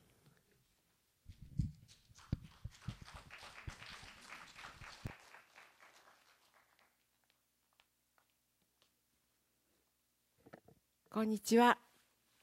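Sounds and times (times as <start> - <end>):
audience applause welcoming the speaker: 2.1 - 7.1
speech: 11.2 - 11.8.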